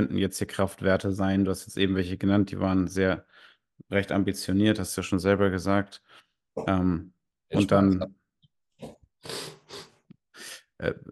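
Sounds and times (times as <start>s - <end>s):
speech: 0.0s - 8.2s, 10.8s - 11.1s
person with a pollen allergy sniffling: 9.2s - 10.7s.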